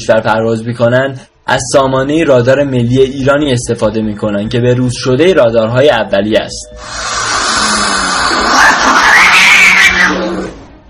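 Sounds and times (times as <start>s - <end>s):
speech: 0.0s - 7.3s
cat yowling and caterwauling: 6.8s - 10.6s.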